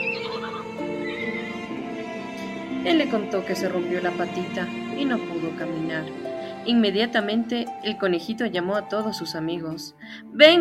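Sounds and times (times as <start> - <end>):
little horse with a broken leg whinnying: 0.0 - 1.8
speech: 2.8 - 10.5.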